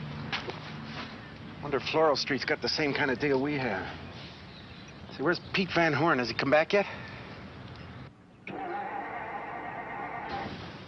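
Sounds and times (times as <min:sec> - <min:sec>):
speech: 0:01.6 - 0:04.1, 0:05.2 - 0:07.1
car engine cranking without starting: 0:08.5 - 0:10.6.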